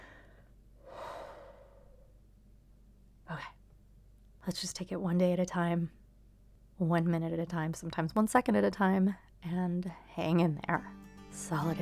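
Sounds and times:
person slowly drawing a deep breath: 0.0 - 2.1
speech: 4.5 - 6.0, 6.8 - 11.7.

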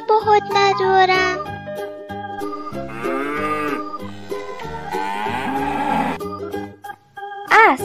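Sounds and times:
speech: 0.1 - 2.0
cow mooing with falling pitch: 2.5 - 6.2.

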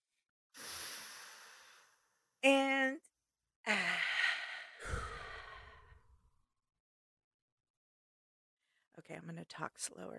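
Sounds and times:
deep inhalation during a guided breathing exercise: 0.6 - 2.1, 3.7 - 6.1
speech: 9.1 - 10.1.

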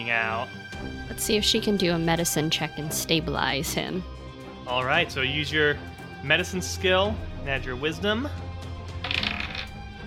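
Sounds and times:
speech: 0.0 - 8.5
dice tumbling across a hard tabletop: 9.0 - 9.8.

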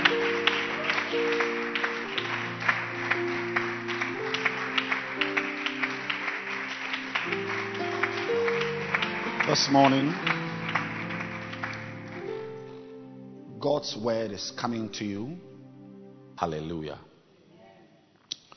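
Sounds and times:
church congregation clapping hands during a worship service: 0.0 - 12.9
sustained music during a worship service: 0.0 - 17.3
speech: 9.5 - 10.4, 13.6 - 15.5, 16.4 - 17.1.

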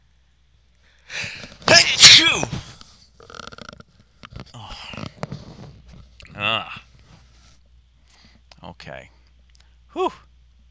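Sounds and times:
person gasping in with a rising wheeze: 1.0 - 1.6
person sneezing loudly: 1.1 - 2.7
small mouth noises: 3.2 - 5.3
speech: 10.0 - 10.3.

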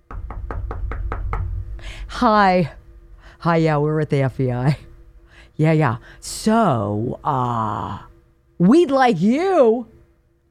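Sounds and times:
sharp knocks on a door: 0.0 - 1.7
low rumble: 0.0 - 10.4
speech: 1.8 - 2.8, 3.4 - 4.9, 5.6 - 10.0.

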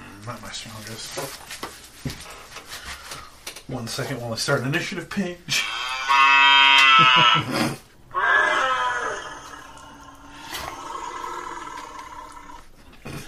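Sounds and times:
speech: 0.2 - 2.4, 3.7 - 6.2, 7.0 - 7.9
long loud belch after eating leftover pasta: 5.9 - 13.2.

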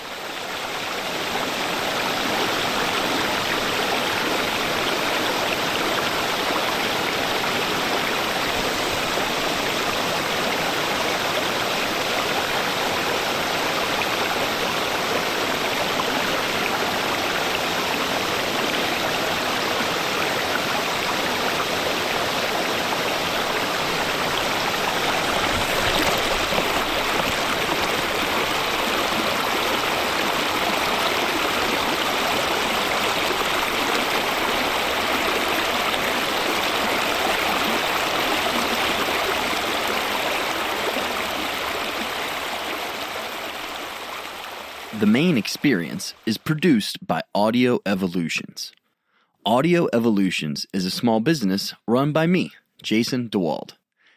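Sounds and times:
stream rushing below a waterfall at Hinckley Park in South Portland: 0.0 - 45.0
speech: 45.0 - 48.8, 49.5 - 53.8.

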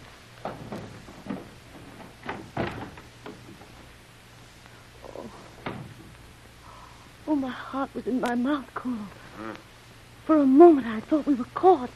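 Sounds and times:
low hum: 0.0 - 11.9
speech: 0.4 - 1.4, 7.3 - 9.7, 10.3 - 11.9
door opening clunk: 0.4 - 3.8, 5.5 - 6.2.

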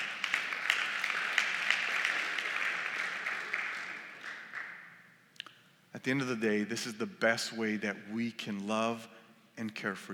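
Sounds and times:
audience applause: 0.0 - 4.9
speech: 6.0 - 10.1.

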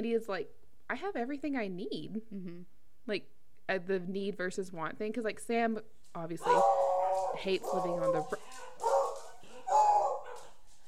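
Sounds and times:
speech: 0.0 - 8.9
dog barking: 6.4 - 10.6.

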